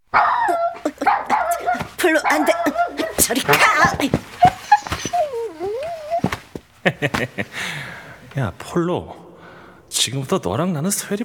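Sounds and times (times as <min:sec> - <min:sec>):
dog growling in whiny bursts: 0:00.0 - 0:06.6
laughter: 0:00.4 - 0:08.4
speech: 0:02.1 - 0:02.6, 0:08.4 - 0:09.2, 0:10.0 - 0:11.2.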